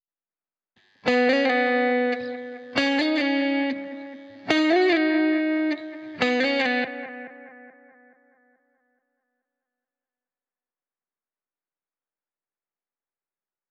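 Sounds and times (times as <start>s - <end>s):
lead guitar in G# minor at 140 BPM: 1.0s - 9.0s.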